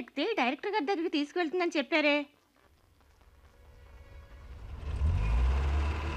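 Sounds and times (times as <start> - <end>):
speech: 0.0 - 2.4
cream-coloured car approaching with low engine rumble: 3.2 - 6.1.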